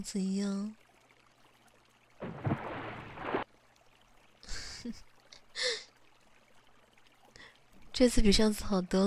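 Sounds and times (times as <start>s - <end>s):
speech: 0.0s - 0.8s, 4.8s - 5.1s, 8.0s - 9.0s
brief quiet splashes in pool water: 0.8s - 7.6s
warm pool water sloshing as someone eases in: 2.0s - 3.9s.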